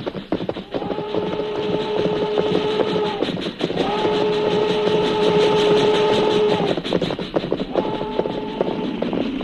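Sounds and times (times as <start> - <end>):
slow-moving freight train rumbling along the rails: 0.0 - 9.4
freight train horn blasts: 0.7 - 3.2, 3.8 - 6.7, 7.7 - 8.9.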